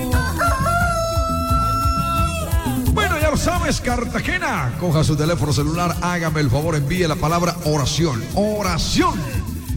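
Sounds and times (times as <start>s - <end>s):
rooster crowing: 0.0s - 2.7s
speech: 3.7s - 9.4s.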